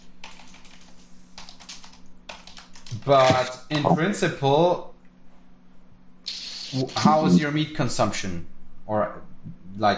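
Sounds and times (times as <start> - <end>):
low steady hum: 0.0 - 9.9
typing on a computer keyboard to write a note: 0.2 - 3.2
speech: 2.9 - 4.9, 6.7 - 9.9.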